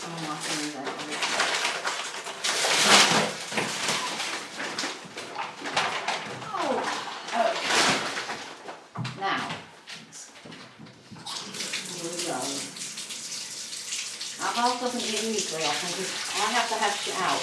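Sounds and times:
people talking: 0.0s - 1.3s, 6.5s - 7.7s, 9.1s - 9.6s, 11.4s - 12.7s, 14.4s - 17.4s
tap water gushing into a bathtub: 0.0s - 6.5s, 10.4s - 17.4s.

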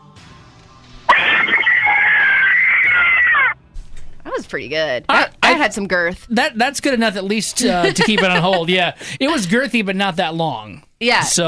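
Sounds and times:
woman letting out a shrill horror-movie scream: 1.1s - 3.6s
laughter: 1.4s - 3.6s, 7.6s - 9.5s
speech: 4.5s - 11.4s.

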